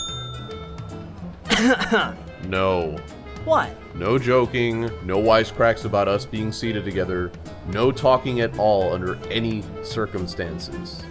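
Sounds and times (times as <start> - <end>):
coins clinking while stolen cash is counted: 0.0 - 0.8
speech: 1.6 - 11.1.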